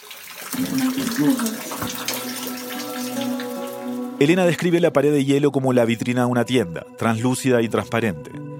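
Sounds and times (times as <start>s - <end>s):
glacier meltwater rushing beneath ice: 0.5s - 4.3s
speech: 0.6s - 2.3s, 4.2s - 8.4s.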